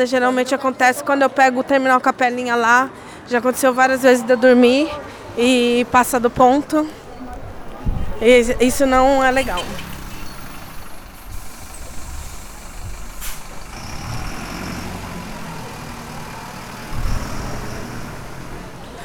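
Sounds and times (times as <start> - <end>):
speech: 0.0 - 7.0, 8.2 - 9.8
city bus engine idling: 4.7 - 19.0
city bus air brakes hissing: 9.4 - 18.7.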